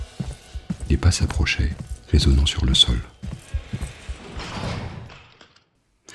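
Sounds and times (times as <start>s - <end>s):
speech: 0.9s - 3.2s
heavy door being flung open with a scraping sweep: 3.6s - 5.4s.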